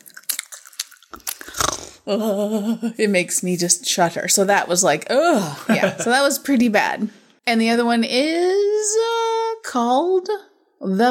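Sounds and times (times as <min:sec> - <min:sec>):
chewing and crunching food: 0:00.0 - 0:02.0
speech: 0:02.0 - 0:11.0
laughter: 0:05.4 - 0:06.4.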